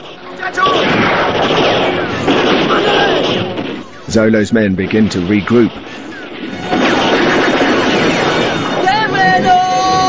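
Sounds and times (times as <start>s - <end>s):
gunshot fired from a wall: 0.0s - 3.8s, 6.4s - 9.0s
speech: 0.4s - 1.0s, 4.1s - 6.1s.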